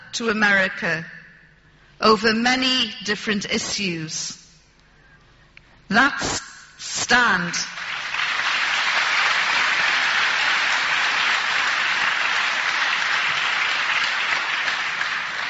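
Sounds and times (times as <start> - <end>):
speech: 0.1 - 1.2, 2.0 - 4.4, 5.9 - 6.5, 7.1 - 7.7
crowd applause: 7.8 - 15.4.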